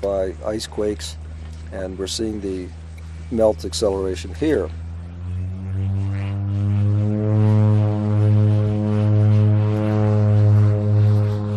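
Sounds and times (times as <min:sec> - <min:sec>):
speech: 0:00.0 - 0:04.8
ski-equipped propeller airplane engine droning in flight: 0:00.0 - 0:11.5.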